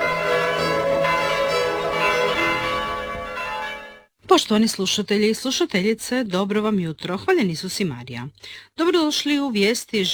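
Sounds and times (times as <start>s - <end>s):
church bells ringing in a peal: 0.0s - 4.1s
speech: 4.4s - 10.1s.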